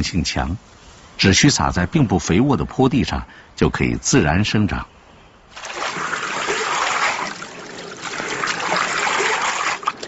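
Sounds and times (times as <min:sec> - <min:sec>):
speech: 0:00.0 - 0:04.9
soaked peas being ground into a wet slurry, splashing and trickling: 0:05.5 - 0:10.0.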